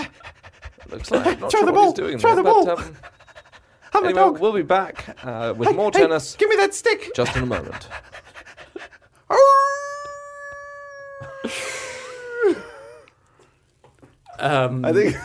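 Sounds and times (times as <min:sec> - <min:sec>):
speech: 0:00.9 - 0:03.2, 0:04.0 - 0:08.1, 0:14.4 - 0:15.2
dog with a wavering whimpering cry: 0:02.3 - 0:04.4, 0:09.3 - 0:13.0
dog howling: 0:09.3 - 0:13.0.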